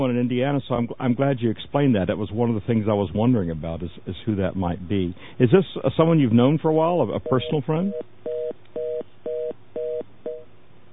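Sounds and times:
speech: 0.0s - 8.2s
telephone line tone beeps through a phone connection: 7.2s - 10.5s.

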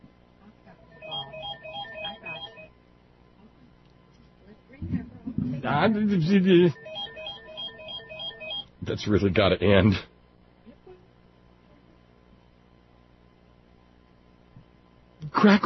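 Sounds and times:
telephone ringer playing a repeating stepped electronic melody: 0.9s - 2.7s, 6.8s - 8.7s
speech: 5.6s - 6.8s, 9.0s - 10.1s.

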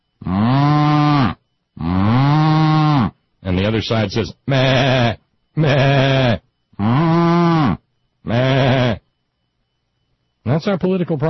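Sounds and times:
cow mooing: 0.2s - 3.2s, 4.5s - 9.0s
speech: 3.7s - 6.5s, 10.6s - 11.2s.

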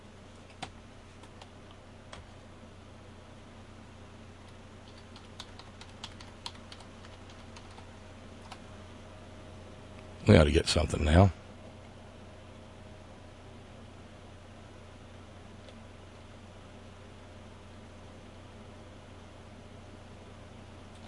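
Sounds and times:
steady hum: 0.0s - 21.0s
typing on a computer keyboard: 4.5s - 8.6s
speech: 10.3s - 11.4s.

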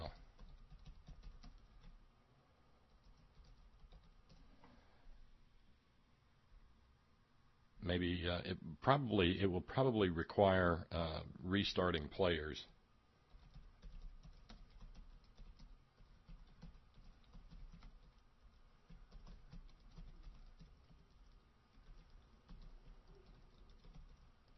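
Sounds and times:
keyboard typing: 0.0s - 2.0s, 2.9s - 4.5s, 13.3s - 24.5s
speech: 7.9s - 12.7s.

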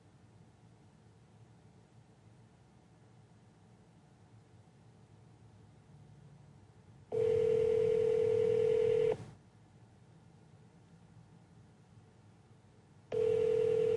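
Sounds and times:
telephone ringing tones from a phone call: 7.1s - 9.2s, 13.1s - 13.9s.

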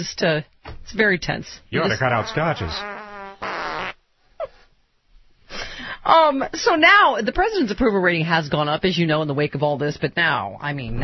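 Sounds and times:
speech: 0.0s - 3.0s, 6.1s - 11.0s
loud buzzy fart: 1.8s - 4.0s.

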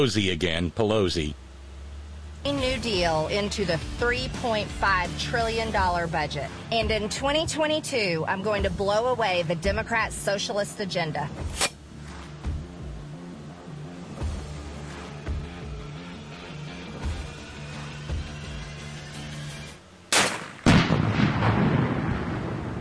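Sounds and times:
speech: 0.0s - 1.4s, 2.4s - 11.7s
music: 2.4s - 19.9s
gunshot: 20.1s - 22.7s
booming explosion: 20.2s - 22.7s.

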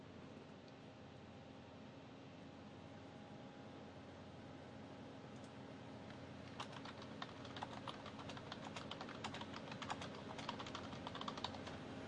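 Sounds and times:
low hum: 0.0s - 12.0s
computer keyboard keys clattering while typing: 6.5s - 11.8s.

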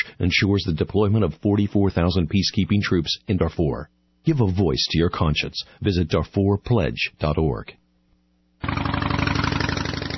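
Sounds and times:
speech: 0.2s - 7.8s
loud motorcycle engine revving: 8.6s - 10.1s.

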